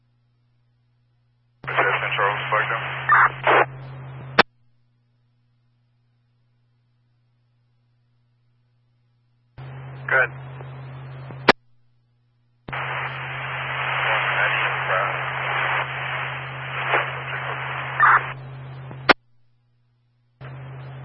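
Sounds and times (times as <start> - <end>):
low hum: 0.0 - 21.0
harsh radio static: 1.6 - 4.4, 9.6 - 11.6, 12.7 - 19.2, 20.4 - 21.0.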